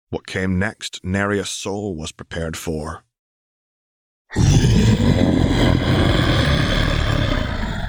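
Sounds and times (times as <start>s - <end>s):
speech: 0.1s - 3.1s, 4.3s - 6.4s
deep rumbling monstrous roar in a mess hall: 4.3s - 7.8s.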